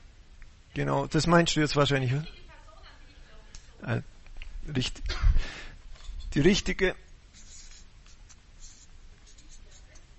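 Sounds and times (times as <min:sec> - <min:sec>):
speech: 0:00.8 - 0:02.4, 0:03.8 - 0:04.1, 0:04.7 - 0:05.6, 0:06.3 - 0:07.0
handwriting with a pen on paper as an address is written out: 0:07.3 - 0:10.1.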